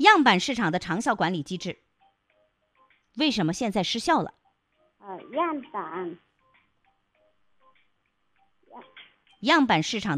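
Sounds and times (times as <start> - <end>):
speech: 0.0 - 1.9, 3.2 - 4.4, 5.0 - 6.2, 8.8 - 10.1
voice over a narrow phone connection: 5.0 - 6.2.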